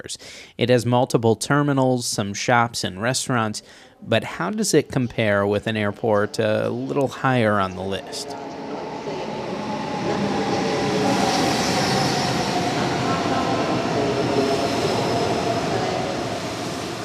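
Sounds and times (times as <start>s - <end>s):
speech: 0.0s - 8.8s
high-speed train passing at airport station: 6.0s - 17.0s
wheels roaring on rails: 6.4s - 17.0s.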